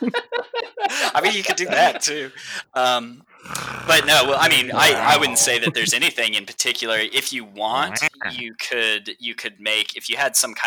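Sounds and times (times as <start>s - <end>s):
laughter: 0.0s - 2.4s, 3.9s - 6.3s, 7.6s - 8.4s
speech: 0.0s - 10.6s
person imitating a growl: 3.4s - 5.9s, 7.6s - 8.4s.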